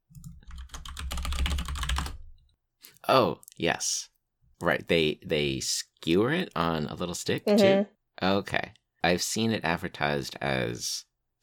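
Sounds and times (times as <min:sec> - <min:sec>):
typing on a clicky computer keyboard: 0:00.2 - 0:02.3
speech: 0:03.1 - 0:11.1.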